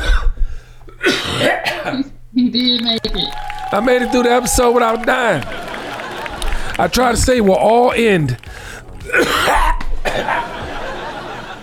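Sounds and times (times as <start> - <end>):
person coughing: 0.0 - 0.4, 1.0 - 2.1, 9.1 - 10.4
room noise: 0.0 - 11.6
speech: 1.8 - 5.7, 6.8 - 9.6
laughter: 3.0 - 11.6.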